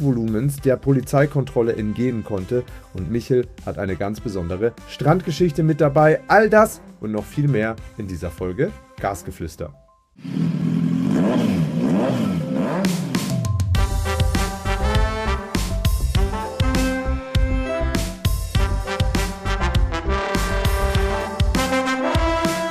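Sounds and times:
speech: 0.0 - 10.5
motorcycle engine revving: 10.2 - 22.6
driving full-band intro jingle music with steady drums: 13.0 - 22.6.

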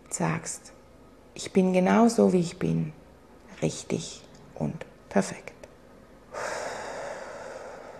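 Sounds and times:
speech: 0.2 - 0.8, 1.4 - 3.0, 3.6 - 5.5
deep breath in and out: 6.3 - 7.9.

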